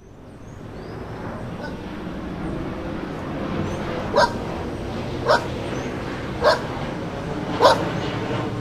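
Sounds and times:
constant low mechanical drone: 0:00.0 - 0:08.5
dog barking: 0:01.6 - 0:01.8, 0:04.1 - 0:04.4, 0:05.2 - 0:05.5, 0:06.4 - 0:06.7, 0:07.6 - 0:07.9.

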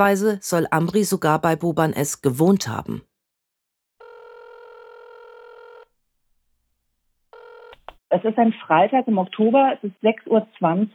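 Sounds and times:
speech: 0:00.0 - 0:03.1, 0:08.1 - 0:10.9
phone line ringback tone on an outgoing call to a journalist: 0:04.0 - 0:05.9, 0:07.3 - 0:07.8.

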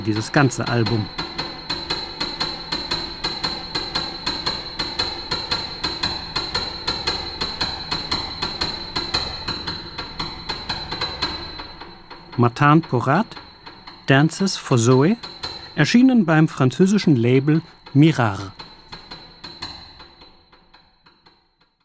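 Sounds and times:
speech: 0:00.0 - 0:01.4, 0:12.4 - 0:13.4, 0:14.1 - 0:18.6
two highest piano keys struck repeatedly: 0:00.0 - 0:21.0.

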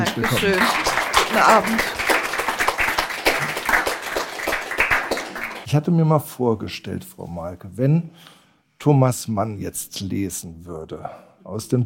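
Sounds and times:
audience applauding to welcome a writer: 0:00.0 - 0:05.7
speech: 0:00.1 - 0:02.0, 0:05.7 - 0:11.8.

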